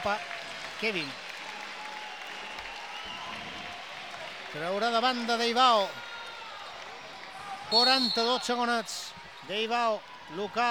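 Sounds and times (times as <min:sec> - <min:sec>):
speech: 0:00.0 - 0:01.2, 0:04.5 - 0:06.0, 0:07.7 - 0:10.7
crowd applause at a sports match: 0:00.0 - 0:10.7.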